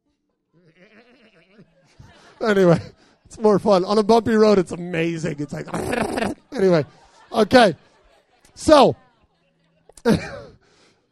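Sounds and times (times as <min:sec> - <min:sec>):
laughter: 0:00.6 - 0:08.9, 0:10.0 - 0:10.6
speech: 0:01.6 - 0:07.9, 0:08.6 - 0:09.0, 0:10.0 - 0:10.4
person imitating a goat bleat: 0:05.7 - 0:06.4.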